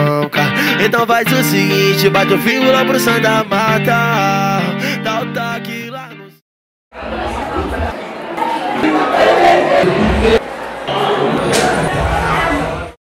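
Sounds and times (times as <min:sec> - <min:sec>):
speech: 0:00.8 - 0:06.2, 0:08.8 - 0:10.4
audience crowd shouting and cheering at a live show in Salvador: 0:06.9 - 0:13.0.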